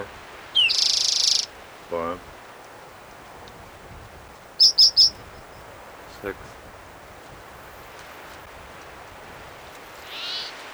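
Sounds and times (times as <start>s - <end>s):
high-pitched bird cry, possibly an owl: 0.0s - 1.5s, 4.6s - 5.4s, 10.0s - 10.6s
steady hiss: 0.0s - 10.7s
speech: 1.9s - 2.3s, 6.2s - 6.6s.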